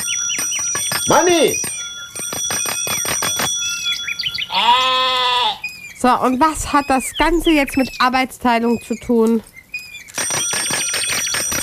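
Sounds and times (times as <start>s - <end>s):
bell ringing: 0.0s - 4.5s, 10.1s - 11.6s
quiet chime: 0.0s - 11.6s
speech: 1.1s - 1.7s, 4.5s - 9.5s.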